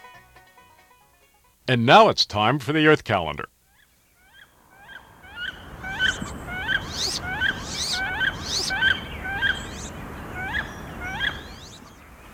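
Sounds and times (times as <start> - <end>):
soft background hiss: 0.0 - 12.3
speech: 1.7 - 3.5
wood duck squealing calls: 3.7 - 12.0.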